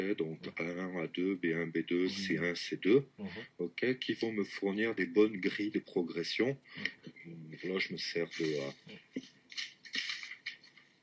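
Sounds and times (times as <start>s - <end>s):
speech: 0.0s - 9.0s
sheet of paper rustling while handled and shaken: 9.5s - 11.0s.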